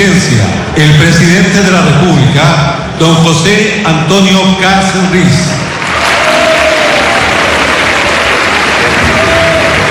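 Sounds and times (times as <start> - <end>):
speech: 0.4 - 5.8
large crowd applauding in a parliament hall: 5.6 - 9.8
faint cheers from a crowd: 5.8 - 9.8.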